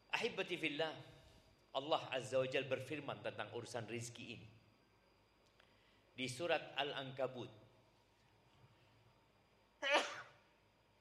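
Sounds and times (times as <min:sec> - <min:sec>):
speech: 0:00.2 - 0:04.6, 0:06.2 - 0:07.6
person sneezing: 0:09.8 - 0:10.4.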